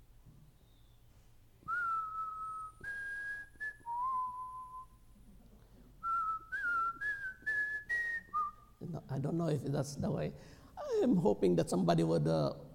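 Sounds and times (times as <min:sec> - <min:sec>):
person whistling to imitate a whistling kettle: 0:01.6 - 0:05.0, 0:06.0 - 0:08.7
speech: 0:09.1 - 0:12.6.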